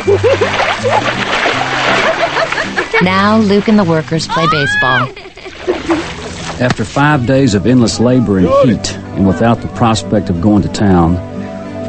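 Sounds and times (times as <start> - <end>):
laughter: 0.0 - 3.4, 4.3 - 6.4
bucket of water splashing on a person: 0.0 - 10.9
speech: 3.0 - 6.0, 6.6 - 11.3
excited voices calling out and yelping: 4.2 - 5.6.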